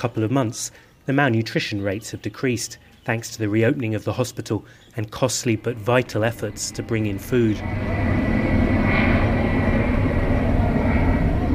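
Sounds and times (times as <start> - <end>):
speech: 0.0 - 8.3
airplane engine drone from a plane airdropping bags of sorghum and boxes of oil: 4.7 - 11.5.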